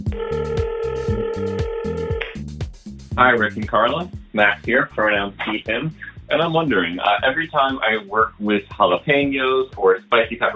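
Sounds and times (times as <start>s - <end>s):
telephone ringing: 0.1s - 2.2s
speech: 3.2s - 10.5s.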